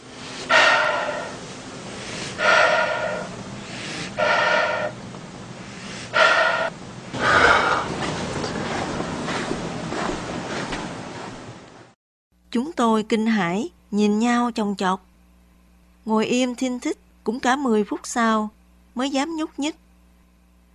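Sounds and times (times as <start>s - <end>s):
heavy rasping breathing outside a tent: 0.0s - 5.0s, 5.6s - 9.5s
speech: 12.9s - 15.1s, 16.0s - 19.8s.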